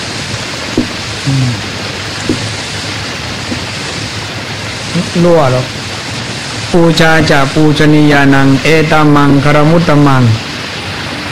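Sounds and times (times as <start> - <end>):
rain falling: 0.0 - 11.2
faint low thuds: 0.8 - 1.5, 2.3 - 2.6, 3.5 - 3.7
speech: 5.2 - 5.8, 6.7 - 10.5.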